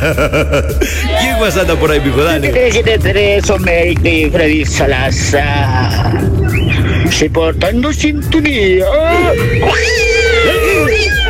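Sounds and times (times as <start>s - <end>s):
laughter: 0.0s - 3.1s
speech: 0.0s - 10.0s
steady tonal hum: 0.0s - 11.2s
cat meowing: 9.2s - 11.2s.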